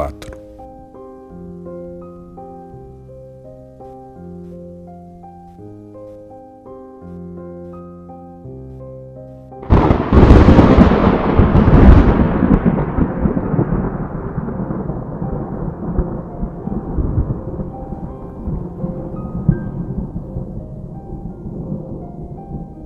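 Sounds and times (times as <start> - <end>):
thunder rumbling: 9.6 - 22.8.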